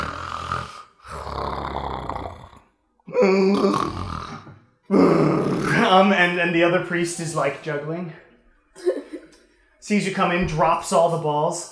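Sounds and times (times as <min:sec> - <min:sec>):
voice imitating loud snoring: 0:00.0 - 0:05.9
speech: 0:06.0 - 0:08.2, 0:09.9 - 0:11.6.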